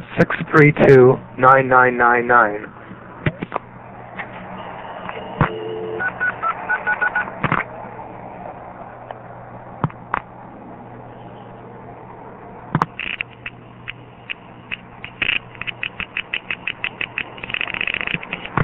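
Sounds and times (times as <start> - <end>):
steady hum of telephone line noise: 0.0 - 18.6
speech: 0.2 - 2.8
touch-tone dialing beeps on a telephone line to a number one crossbar exchange: 5.2 - 7.3
sharp clicks on a telephone line: 12.7 - 18.6.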